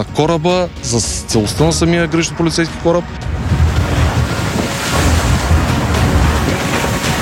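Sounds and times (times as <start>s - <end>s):
speech: 0.0s - 3.6s
rough sea waves of sea state 4 at night in rain: 0.9s - 7.2s
strong wind buffeting the microphone: 3.2s - 7.2s.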